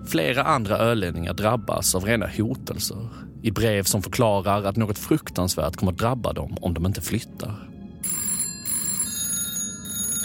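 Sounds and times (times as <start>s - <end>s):
speech: 0.0s - 7.8s
telephone bell ringing: 8.0s - 10.2s.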